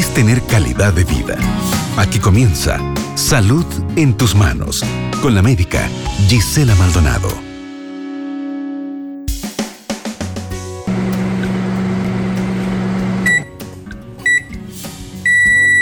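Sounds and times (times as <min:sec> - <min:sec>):
speech: 0:00.2 - 0:07.5
microwave oven heating food humming: 0:10.9 - 0:13.5
microwave finishing beeps: 0:13.3 - 0:13.5, 0:14.3 - 0:14.6, 0:15.3 - 0:15.8
microwave clicks and button beeps: 0:14.3 - 0:14.6, 0:15.3 - 0:15.8.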